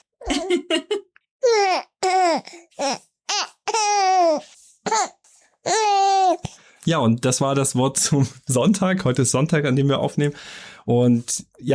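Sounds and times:
speech: 0.5 - 1.0, 6.9 - 11.7
baby babbling: 1.4 - 6.5.

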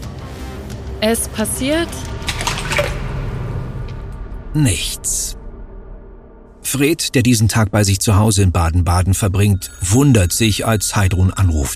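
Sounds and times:
speech: 1.0 - 2.9, 4.5 - 5.4, 6.7 - 11.7
bath water rumbling and sloshing: 1.9 - 4.2
hair dryer splashing into bath water: 2.1 - 3.3.

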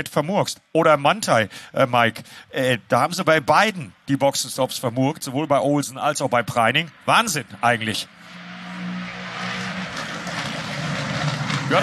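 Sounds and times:
speech: 0.0 - 8.4
GT3 racing car engines roaring on a track: 4.6 - 11.8.

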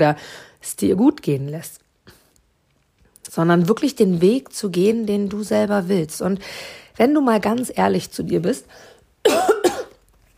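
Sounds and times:
speech: 0.0 - 1.8, 3.3 - 8.9
person coughing harshly: 9.2 - 10.0.

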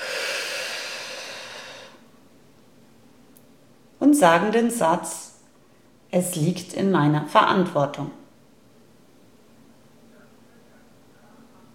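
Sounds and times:
long airy exhale through the mouth: 0.0 - 2.0
speech: 4.2 - 5.3, 6.1 - 8.2.

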